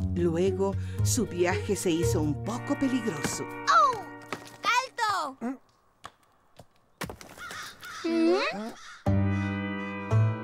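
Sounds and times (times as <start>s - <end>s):
speech: 0.2s - 3.8s
crow cawing: 7.3s - 10.2s.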